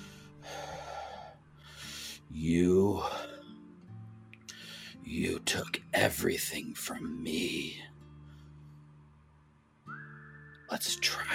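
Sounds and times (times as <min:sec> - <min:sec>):
heavy ragged breathing: 0:00.0 - 0:02.3, 0:04.5 - 0:05.0
speech: 0:02.3 - 0:03.3, 0:05.1 - 0:08.0, 0:10.8 - 0:11.3.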